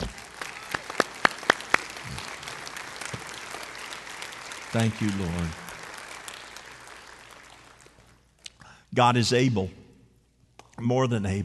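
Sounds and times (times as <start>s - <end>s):
standing church audience clapping: 0.0s - 8.5s
speech: 4.7s - 5.6s, 9.0s - 9.8s, 10.8s - 11.4s.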